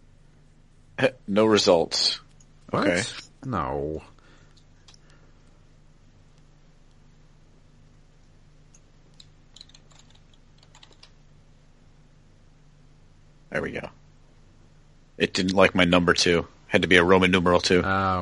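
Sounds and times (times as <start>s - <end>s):
speech: 1.0s - 4.1s, 15.2s - 18.2s
typing on a computer keyboard: 9.1s - 11.2s.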